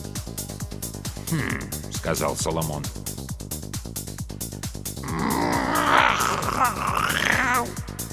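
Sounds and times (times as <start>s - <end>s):
speech: 1.3s - 3.1s, 6.6s - 7.9s
mechanical cat on construction scaffolding grunting: 5.0s - 7.8s.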